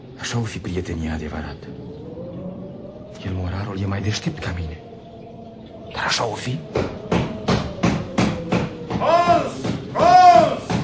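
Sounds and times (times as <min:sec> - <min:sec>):
wavering whistling blowing wind: 0:00.0 - 0:10.8
speech: 0:00.2 - 0:01.9, 0:03.1 - 0:04.9, 0:05.9 - 0:07.0
man knocking firmly on a wooden door: 0:06.7 - 0:10.8.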